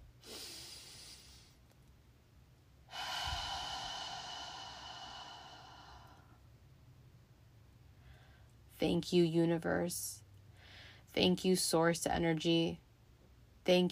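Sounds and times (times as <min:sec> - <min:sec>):
deep breaths in and out: 0:00.2 - 0:01.6, 0:02.9 - 0:06.5, 0:07.9 - 0:08.6, 0:10.4 - 0:11.1
speech: 0:08.8 - 0:10.2, 0:11.1 - 0:12.8, 0:13.6 - 0:13.9.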